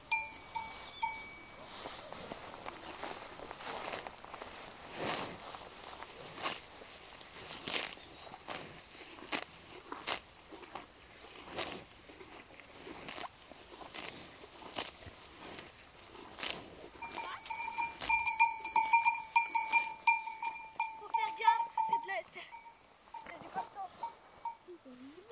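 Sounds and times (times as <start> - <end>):
cowbells clanking on grazing cows in an open farm field: 0.0 - 4.7, 16.6 - 25.3
rustling: 0.0 - 25.3.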